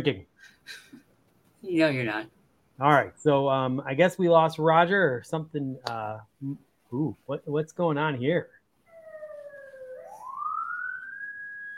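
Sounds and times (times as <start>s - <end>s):
speech: 0.0s - 0.9s, 1.6s - 8.6s
police siren wailing: 8.9s - 11.7s.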